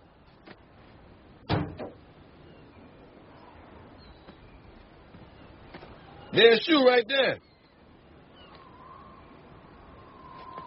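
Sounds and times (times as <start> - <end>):
door shutting with a solid thud: 1.5 - 2.0
speech: 6.4 - 7.5.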